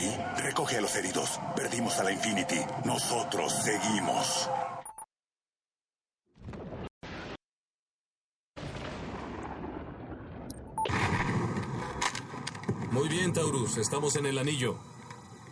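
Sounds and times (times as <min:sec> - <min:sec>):
speech: 0:00.1 - 0:04.9, 0:13.1 - 0:15.0
anti-aircraft guns firing in a video game: 0:08.7 - 0:13.1.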